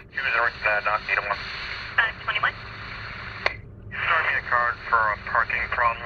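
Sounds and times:
police radio chatter in a car: 0:00.0 - 0:06.0
sharp click of police radio: 0:03.4 - 0:03.6.

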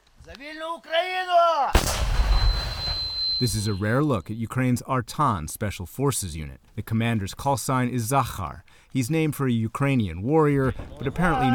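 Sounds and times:
speech: 0:00.3 - 0:01.7, 0:03.4 - 0:11.5
person shouting: 0:00.6 - 0:01.8, 0:11.2 - 0:11.5
anti-tank rocket-propelled grenade being fired: 0:01.8 - 0:03.8.

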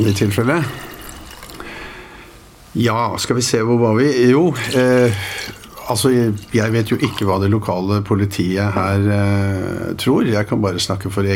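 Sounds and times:
speech: 0:00.0 - 0:00.9, 0:02.8 - 0:11.3
water poured into a glass: 0:00.0 - 0:01.7, 0:04.5 - 0:07.6.

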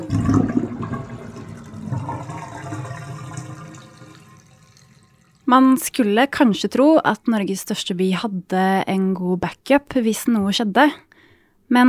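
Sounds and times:
water running from a faucet: 0:00.0 - 0:05.5
speech: 0:05.5 - 0:11.1, 0:11.7 - 0:11.8.

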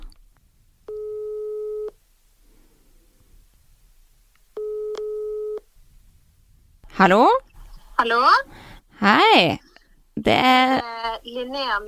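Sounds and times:
ringback tones of an outgoing phone call on speakerphone: 0:00.9 - 0:02.0, 0:04.6 - 0:05.6
speech: 0:07.0 - 0:07.4, 0:08.0 - 0:09.6, 0:10.2 - 0:11.8.

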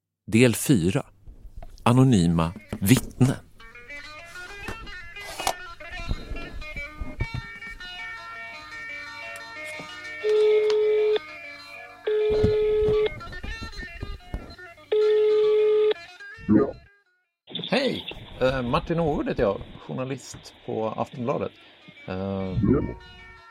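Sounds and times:
speech: 0:00.3 - 0:01.1, 0:01.8 - 0:03.5, 0:18.7 - 0:23.2
busy musical bed: 0:02.0 - 0:17.6, 0:20.6 - 0:23.4
telephone ringback tones of a phone call being placed: 0:10.1 - 0:13.2, 0:14.9 - 0:16.0.

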